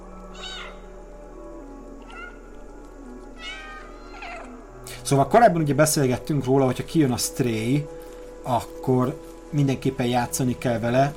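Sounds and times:
cat meowing in a video game on button press: 0.2 - 1.0, 2.0 - 2.6, 3.3 - 4.6
speech: 5.0 - 11.1.

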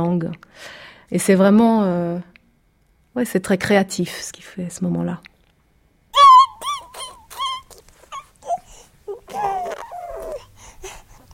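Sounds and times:
speech: 0.0 - 2.3, 3.2 - 5.3
baby calling out with wailing cries and whimpers: 6.2 - 11.0.

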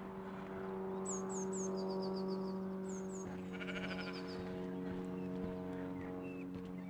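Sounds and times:
propeller aircraft low drone: 0.0 - 6.8
sheep bleating: 3.5 - 4.2.

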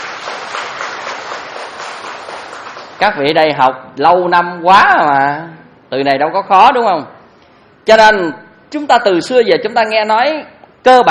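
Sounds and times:
audience applause at a Buddhist dharma talk: 0.0 - 3.0
speech: 3.0 - 7.2, 7.9 - 11.0.

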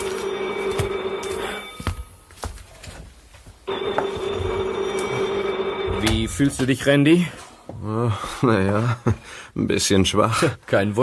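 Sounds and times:
telephone ringing with a steady electronic trill: 0.0 - 2.4, 3.7 - 7.0
speech: 6.0 - 11.0.

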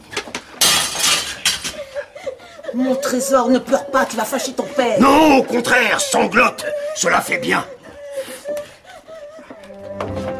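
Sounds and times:
window pane being smashed: 0.6 - 1.7
speech: 2.7 - 7.8.

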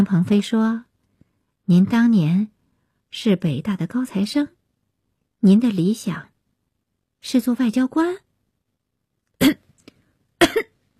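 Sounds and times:
speech: 0.0 - 0.9, 1.7 - 4.6, 5.4 - 6.3, 7.2 - 8.2, 9.4 - 9.6
choking coughs: 9.4 - 9.7, 10.4 - 10.8.

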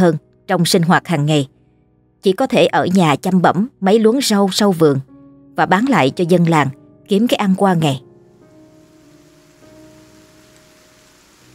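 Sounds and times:
speech: 0.0 - 1.6, 2.2 - 8.1
rain falling in a night-time rain and wind storm over a village: 8.2 - 11.5.

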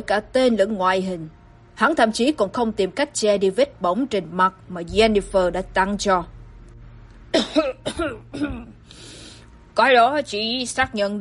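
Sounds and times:
speech: 0.0 - 6.4, 7.4 - 9.1, 9.8 - 11.1
man coughing: 7.3 - 8.8.

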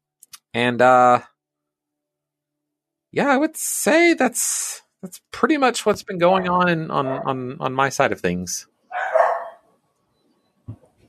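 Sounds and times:
speech: 0.5 - 1.3, 3.1 - 8.7
dog barking: 6.4 - 7.3, 8.9 - 9.7.

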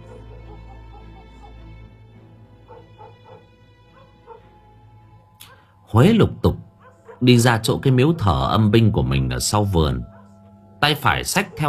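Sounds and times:
dogs barking and yelping at night in a village: 0.0 - 2.0, 2.6 - 5.8, 6.6 - 7.4, 10.0 - 10.6, 11.2 - 11.6
speech: 5.9 - 6.6, 7.2 - 10.2, 10.8 - 11.6.

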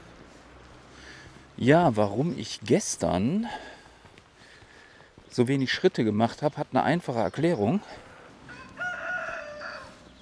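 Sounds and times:
speech: 1.6 - 3.8, 5.4 - 8.0
rooster crowing: 8.4 - 10.1.

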